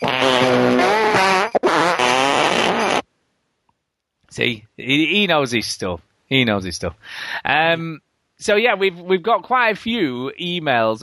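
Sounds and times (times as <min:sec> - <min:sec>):
fart sound effect: 0:00.0 - 0:03.0
speech: 0:04.4 - 0:11.0.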